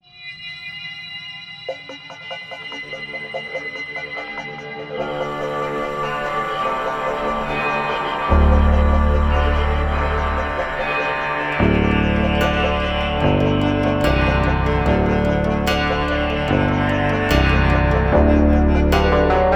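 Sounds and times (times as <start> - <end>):
high tensile roundwound strings: 5.0 - 19.5.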